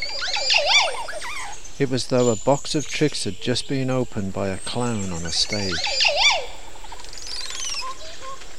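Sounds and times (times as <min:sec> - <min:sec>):
Montezuma oropendola calling in deep jungle in Belize: 0:00.0 - 0:02.6, 0:04.6 - 0:08.5
steady hiss of jungle forest ambience in Belize: 0:00.0 - 0:08.5
speech: 0:01.8 - 0:06.3.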